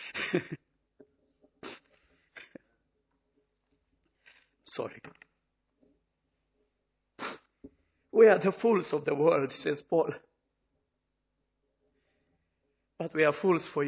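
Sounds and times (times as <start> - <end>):
speech: 0.3 - 0.7, 4.8 - 5.2, 8.2 - 10.3, 13.0 - 13.8
person sneezing: 1.6 - 2.5, 7.2 - 7.5.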